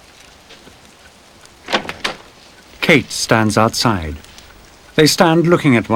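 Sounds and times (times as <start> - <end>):
door opening with clicks and scrapes: 1.6 - 2.7
speech: 2.9 - 4.3, 5.0 - 5.9.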